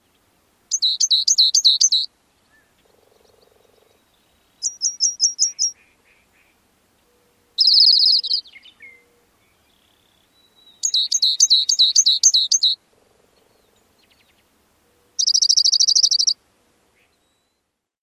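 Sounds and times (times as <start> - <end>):
Rock Wren song: 0.0 - 18.0.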